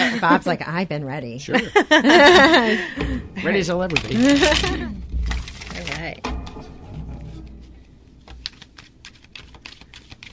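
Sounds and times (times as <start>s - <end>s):
low hum: 0.0s - 10.3s
speech: 0.2s - 5.1s
laughter: 1.5s - 3.2s, 4.1s - 5.0s
deck of cards being shuffled: 3.9s - 6.1s, 8.2s - 10.3s.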